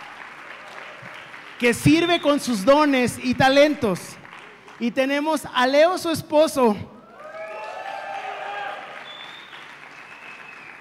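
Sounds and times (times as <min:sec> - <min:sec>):
audience applauding: 0:00.0 - 0:02.7, 0:04.1 - 0:04.9, 0:07.1 - 0:10.7
speech: 0:01.6 - 0:04.2, 0:04.8 - 0:06.9
cheering or whistling: 0:07.2 - 0:10.7.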